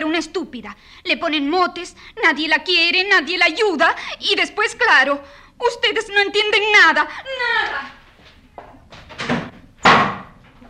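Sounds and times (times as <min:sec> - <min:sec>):
speech: 0:00.2 - 0:08.0
door slamming shut with a loud bang: 0:09.0 - 0:10.5.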